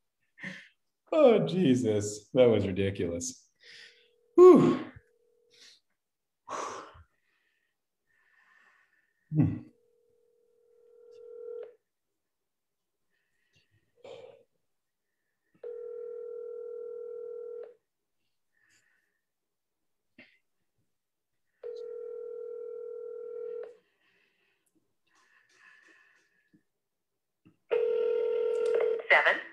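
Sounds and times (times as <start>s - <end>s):
speech: 1.1s - 3.8s, 4.4s - 4.9s
faint breathing: 3.6s - 4.2s, 6.5s - 9.3s, 18.5s - 19.3s, 23.6s - 26.7s
phone line ringing tone: 9.9s - 11.8s, 15.6s - 17.8s, 21.6s - 23.8s, 27.7s - 29.3s.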